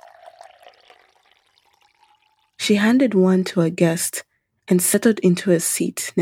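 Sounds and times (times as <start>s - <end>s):
water poured from calabash into metal cups: 0.0s - 2.6s
speech: 2.7s - 6.1s.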